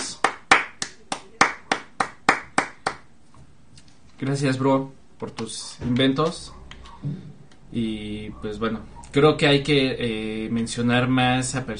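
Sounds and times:
single pair of hands clapping: 0.0s - 3.0s
speech: 4.2s - 11.7s.

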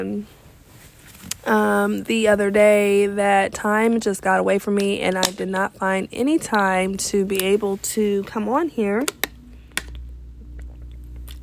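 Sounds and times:
speech: 0.0s - 0.4s, 1.2s - 9.3s
low steady hum: 0.0s - 11.4s
person taking a drink of water: 9.7s - 11.4s.

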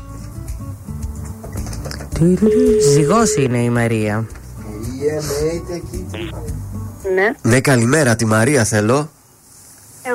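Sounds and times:
busy noise: 1.6s - 7.5s
telephone ringback tone from an outgoing call: 2.2s - 3.8s
speech: 2.2s - 9.2s.

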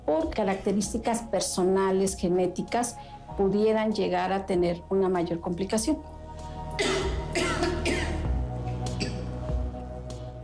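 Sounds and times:
speech: 0.1s - 6.2s
person coughing in harsh bursts: 6.8s - 8.3s, 9.0s - 9.3s.

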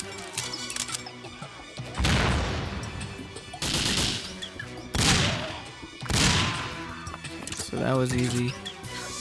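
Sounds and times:
video game grenade explosions: 2.0s - 7.0s
speech: 7.8s - 8.6s.

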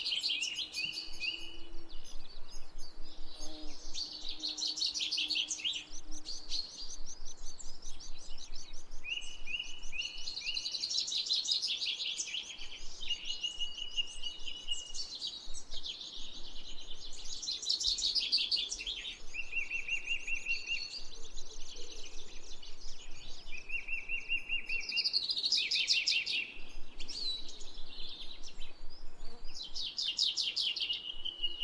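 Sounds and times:
birds singing: 0.0s - 31.6s.

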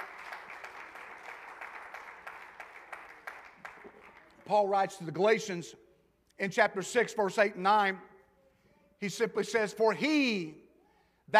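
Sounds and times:
audience clapping hands: 0.0s - 4.5s
speech: 4.5s - 5.8s, 6.4s - 8.1s, 9.0s - 10.6s.

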